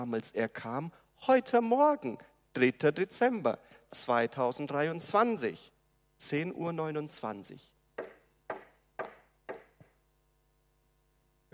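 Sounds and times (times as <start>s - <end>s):
speech: 0.0s - 7.7s
knocking on a wooden door: 8.0s - 9.9s.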